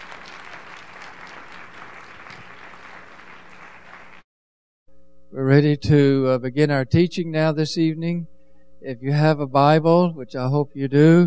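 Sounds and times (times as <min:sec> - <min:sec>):
audience clapping in appreciation: 0:00.0 - 0:04.2
speech: 0:05.3 - 0:11.2.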